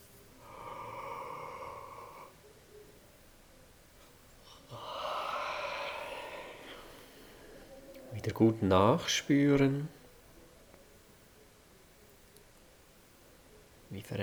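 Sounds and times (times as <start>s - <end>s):
breathy yawns during a yawning and stretching exercise: 0.4s - 2.4s, 4.5s - 7.8s
speech: 8.2s - 10.0s.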